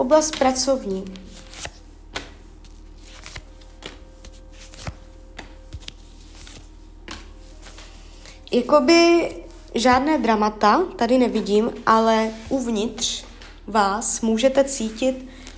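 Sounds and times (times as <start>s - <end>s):
speech: 0.0s - 1.7s, 8.5s - 15.4s
low steady hum: 0.0s - 15.5s
tarot cards being drawn and shuffled: 0.2s - 8.4s, 12.2s - 13.7s, 14.8s - 15.5s.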